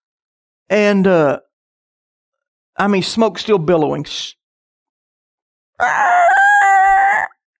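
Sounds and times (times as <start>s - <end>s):
speech: 0.7s - 1.5s, 2.8s - 4.4s, 5.8s - 6.3s
voice imitating the screeching belt of a failing car: 5.8s - 7.4s.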